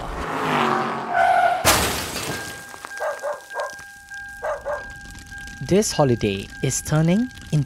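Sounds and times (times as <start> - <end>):
car tires squealing while swerving: 0.0 - 2.0
car crash: 0.5 - 3.0
glass shattering: 1.6 - 5.6
speech: 5.7 - 7.6.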